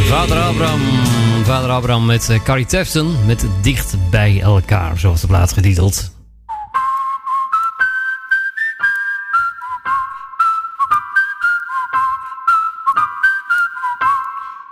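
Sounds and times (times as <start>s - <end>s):
speech: 0.1s - 6.2s
whistled melody: 6.5s - 14.7s.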